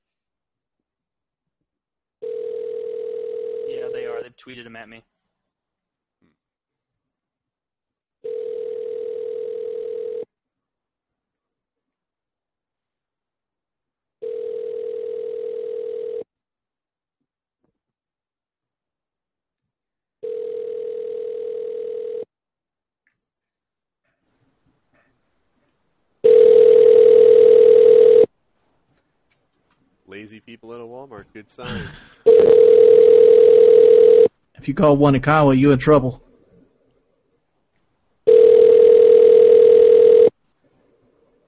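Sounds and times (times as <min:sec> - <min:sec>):
phone line ringback tone: 0:02.2 - 0:04.1, 0:08.2 - 0:10.2, 0:14.2 - 0:16.2, 0:20.2 - 0:22.3, 0:26.2 - 0:28.3, 0:32.3 - 0:34.3, 0:38.3 - 0:40.3
speech: 0:04.4 - 0:05.2, 0:30.6 - 0:32.8, 0:34.6 - 0:36.2.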